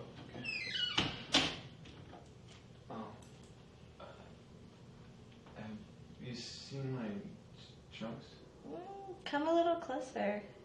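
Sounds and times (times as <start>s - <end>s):
door squeaking shut: 0.2s - 1.6s
speech: 6.4s - 7.0s, 9.3s - 10.6s.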